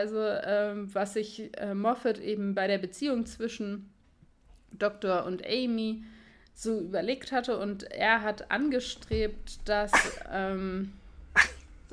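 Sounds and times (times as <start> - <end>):
speech: 0.0 - 4.0, 4.7 - 11.6
sneeze: 9.9 - 10.4, 11.4 - 11.7.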